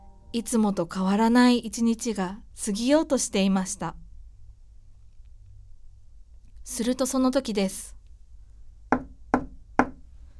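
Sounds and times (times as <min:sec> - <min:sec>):
speech: 0:00.3 - 0:04.0, 0:06.7 - 0:08.0
knocking on a wooden door: 0:08.9 - 0:10.0.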